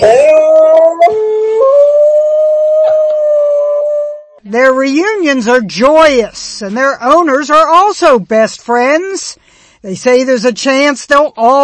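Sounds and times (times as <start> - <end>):
dog howling and whining: 0.0 - 4.4
speech: 4.8 - 11.6.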